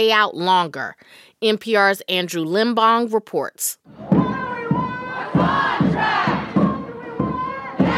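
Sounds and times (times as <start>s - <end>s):
speech: 0.0s - 4.3s
large crowd chanting at a union rally: 3.9s - 7.9s.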